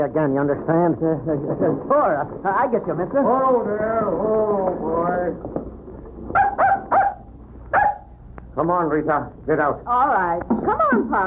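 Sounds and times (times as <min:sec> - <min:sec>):
speech: 0:00.0 - 0:05.7, 0:08.6 - 0:11.2
low rumble: 0:00.0 - 0:11.2
puppy barking: 0:06.3 - 0:08.1.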